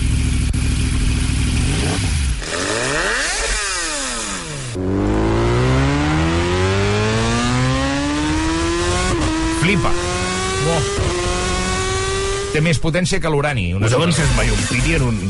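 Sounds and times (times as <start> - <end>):
superbike racing motorcycle engine revving and accelerating through the gears: 0.0 - 12.8, 13.9 - 15.2
speech: 12.6 - 15.2.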